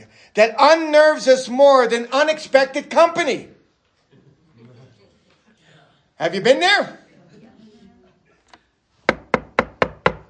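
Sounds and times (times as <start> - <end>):
speech: 0.2 - 3.6, 6.2 - 7.0
knocking on a door: 9.1 - 10.2.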